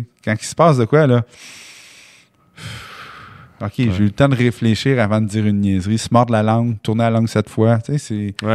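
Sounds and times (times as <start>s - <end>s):
speech: 0.2s - 1.7s, 3.6s - 8.5s
deep breath inhaled and exhaled: 1.3s - 3.6s.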